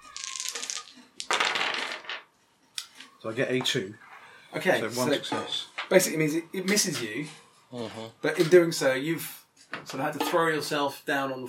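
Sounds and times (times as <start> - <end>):
three dice rattling and clattering across a hard surface: 0.0 - 2.3
speech: 3.2 - 11.4.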